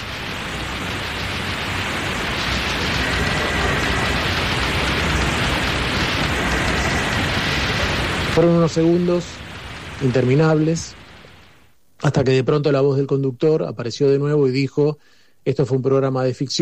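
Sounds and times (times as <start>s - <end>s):
broadband radio static: 0.0s - 16.6s
speech: 8.4s - 9.4s, 10.0s - 11.0s, 12.0s - 16.6s.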